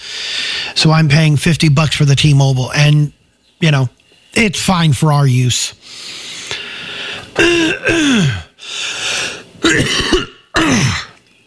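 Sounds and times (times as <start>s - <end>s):
speech: 0.8s - 6.0s, 7.4s - 8.8s, 9.6s - 11.0s
harsh throat clearing with voiced grunting tones: 7.4s - 8.6s, 9.6s - 11.2s.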